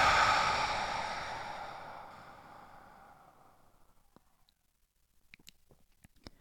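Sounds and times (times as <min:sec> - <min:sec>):
double inhale through nose and exhale: 0:00.0 - 0:03.4.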